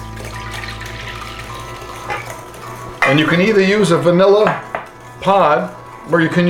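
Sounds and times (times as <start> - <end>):
milk pouring into a container: 0.0 - 2.9
speech: 3.1 - 6.4.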